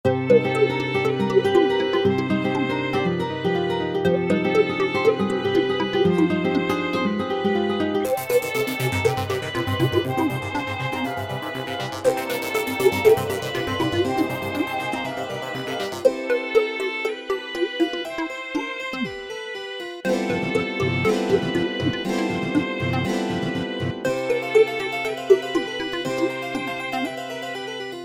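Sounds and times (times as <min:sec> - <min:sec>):
catchy looping music piece made in Garageband: 0:00.1 - 0:27.8.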